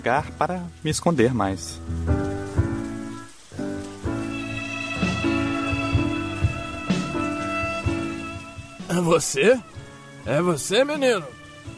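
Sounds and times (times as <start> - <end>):
speech: 0.0 - 2.2, 9.0 - 11.4
rain falling in a garden: 0.0 - 11.7.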